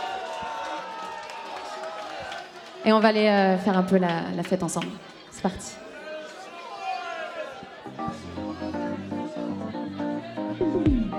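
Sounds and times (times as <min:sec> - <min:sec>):
crowd cheering and shouts: 0:00.0 - 0:02.9, 0:05.0 - 0:11.1
audience applause: 0:00.0 - 0:04.2
speech: 0:02.8 - 0:05.9.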